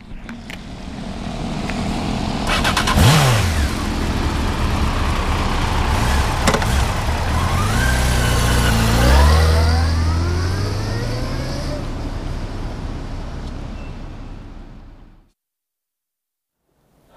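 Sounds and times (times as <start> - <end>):
motorcycle engine revving: 0.3 - 13.0.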